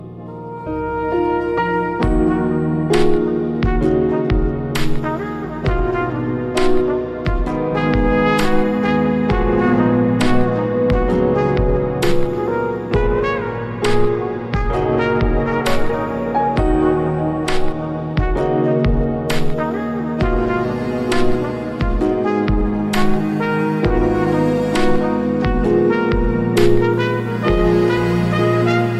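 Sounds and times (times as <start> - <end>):
saxophone: 0.0 - 28.9.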